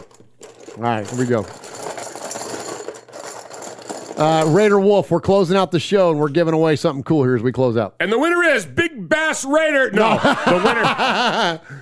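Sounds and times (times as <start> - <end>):
raffle tickets being mixed in a popcorn can: 0.0 - 4.8
speech: 0.8 - 1.6, 4.2 - 11.8
laughter: 9.9 - 11.8.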